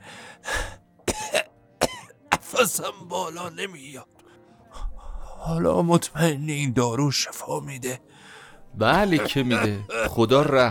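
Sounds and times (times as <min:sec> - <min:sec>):
harsh raspy coughs: 0:01.0 - 0:03.0, 0:08.9 - 0:10.6
speech: 0:02.6 - 0:04.2, 0:05.4 - 0:10.6.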